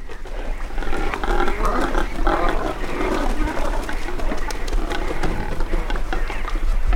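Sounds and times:
cormorants grunting at a nesting colony on a shipwreck near South Manitou Island: 0.0s - 6.9s.

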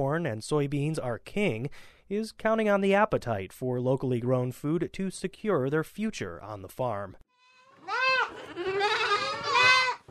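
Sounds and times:
speech: 0.0s - 7.3s
eight-week-old goat kids bleating in a milking barn on an Amish farm: 7.5s - 10.0s.

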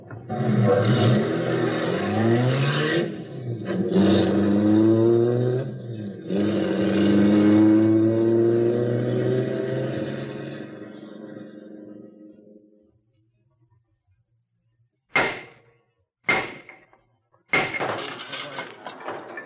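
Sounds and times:
getaway car engine revving and accelerating through gear changes: 0.0s - 12.6s.

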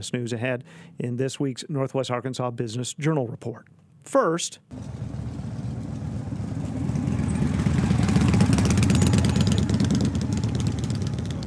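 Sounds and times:
speech: 0.0s - 5.2s
motorcycle engines rumbling at a bike rally: 4.7s - 11.4s.

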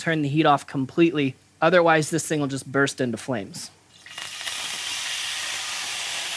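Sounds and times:
speech: 0.0s - 3.8s
whiskey sizzling in a hot skillet: 3.8s - 6.3s.

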